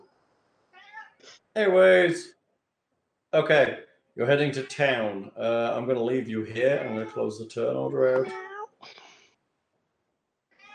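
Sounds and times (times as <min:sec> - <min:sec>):
hungry cats meowing: 0:00.8 - 0:01.3, 0:06.5 - 0:08.9, 0:10.6 - 0:10.7
speech: 0:01.6 - 0:02.4, 0:03.3 - 0:09.0.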